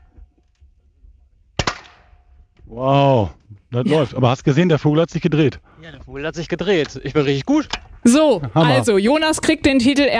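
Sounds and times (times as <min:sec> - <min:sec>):
gunshot fired at a target bird during a shooting contest: 0:01.6 - 0:02.2
speech: 0:02.7 - 0:10.1.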